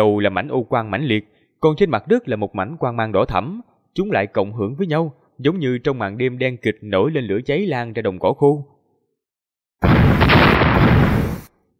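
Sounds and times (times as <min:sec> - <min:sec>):
speech: 0:00.0 - 0:08.7
explosion rumbling up from underground: 0:09.8 - 0:11.5.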